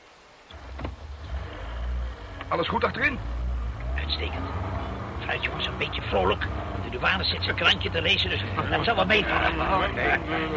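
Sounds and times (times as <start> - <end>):
car engine rumbling as car sets off: 0.5 - 10.5
speech: 2.5 - 3.4, 4.1 - 4.7, 5.3 - 10.5
laughter: 5.8 - 10.5.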